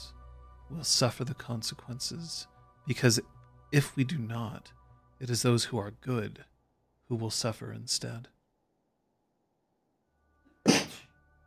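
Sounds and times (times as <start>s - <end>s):
speech: 0.7s - 6.5s, 7.1s - 8.4s
person sneezing: 10.6s - 11.1s.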